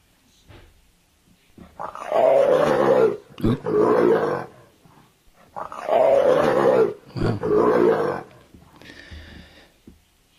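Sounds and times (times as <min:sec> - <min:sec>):
leopard giving rough rasping growls: 0:01.6 - 0:08.6.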